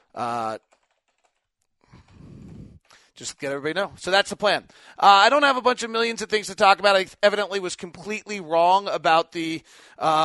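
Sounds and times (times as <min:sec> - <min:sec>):
speech: 0:00.2 - 0:00.8, 0:03.2 - 0:10.2
typing on a computer keyboard: 0:00.5 - 0:01.5.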